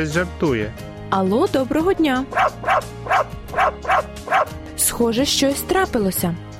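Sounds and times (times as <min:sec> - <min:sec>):
speech: 0:00.0 - 0:03.4, 0:04.8 - 0:06.5
dog barking: 0:02.3 - 0:04.6.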